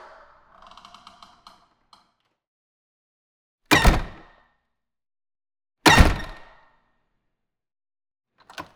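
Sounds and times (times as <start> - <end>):
large industrial door opening and closing: 3.7 - 4.3, 5.9 - 6.5.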